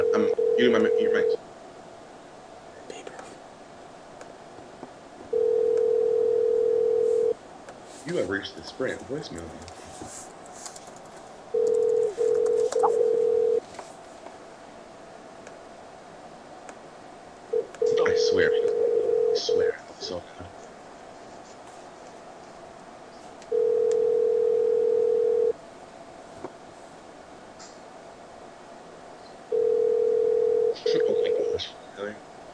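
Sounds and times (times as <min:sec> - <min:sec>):
soft voice: 0:00.0 - 0:01.4, 0:02.7 - 0:03.4, 0:17.9 - 0:18.7, 0:19.4 - 0:20.6, 0:30.8 - 0:32.2
telephone ringback tone: 0:00.0 - 0:01.4, 0:05.3 - 0:07.3, 0:11.5 - 0:13.6, 0:17.8 - 0:19.7, 0:23.5 - 0:25.5, 0:29.5 - 0:31.6
speech: 0:00.2 - 0:01.5, 0:08.3 - 0:09.8.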